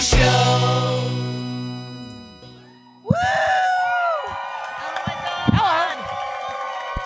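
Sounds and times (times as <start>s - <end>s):
short musical tune: 0.2s - 3.0s
high-pitched whoops: 2.5s - 7.0s
live audience at a venue in Eugene Oregon cheering and screaming: 2.6s - 7.0s.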